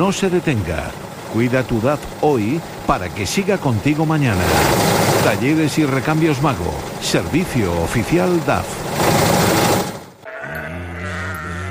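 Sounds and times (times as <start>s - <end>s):
speech: 0.0s - 9.1s
loud rattling burst of noise: 0.0s - 10.2s
sheep bleating: 10.2s - 11.6s.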